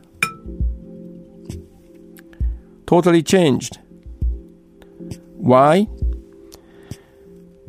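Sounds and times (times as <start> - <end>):
bell with bits of clay stuck on it struck gently with a wooden stick: 0.2 - 0.5
speech: 2.9 - 3.8, 5.4 - 6.0.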